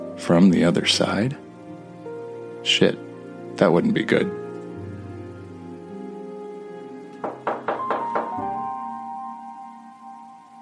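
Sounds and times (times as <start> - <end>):
speech: 0.2 - 1.4, 2.6 - 4.4
knocking on a door: 7.2 - 8.7.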